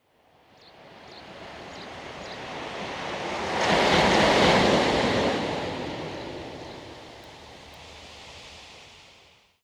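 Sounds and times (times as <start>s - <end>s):
sea surf breaking: 1.4s - 9.0s.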